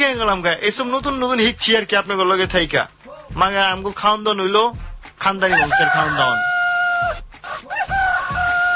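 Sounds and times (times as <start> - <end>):
speech: 0.0 - 7.2
chicken crowing: 5.5 - 8.7.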